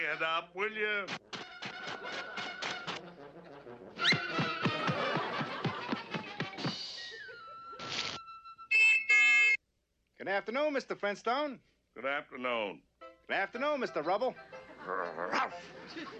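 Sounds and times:
speech: 0:00.0 - 0:01.3, 0:01.9 - 0:02.7, 0:10.3 - 0:16.1
laughter: 0:01.8 - 0:08.0, 0:14.4 - 0:16.1
person imitating dog barks, whines and yelps: 0:14.8 - 0:15.6.

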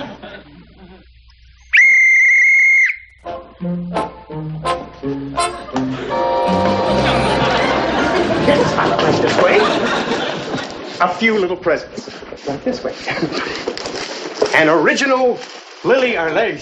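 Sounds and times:
laughter: 0:00.0 - 0:01.1, 0:05.5 - 0:11.0, 0:12.9 - 0:13.9
person whistling: 0:01.7 - 0:04.2
lively orchestral music with tinkling plucked notes: 0:03.3 - 0:10.5
speech: 0:03.6 - 0:07.1, 0:08.5 - 0:10.1, 0:11.0 - 0:13.7, 0:14.6 - 0:16.6.

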